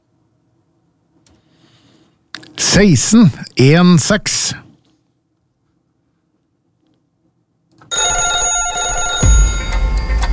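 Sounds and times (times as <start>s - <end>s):
speech: 2.6s - 4.6s
telephone bell ringing with metallic clatter: 7.9s - 10.2s.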